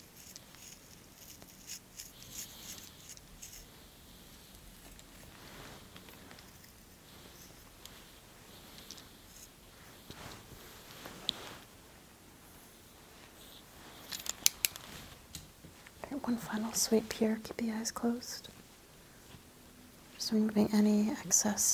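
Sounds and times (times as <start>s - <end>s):
scissors trimming beard hair: 0.0s - 3.6s
faint rustling: 0.0s - 21.5s
speech: 16.2s - 18.5s, 20.3s - 21.7s.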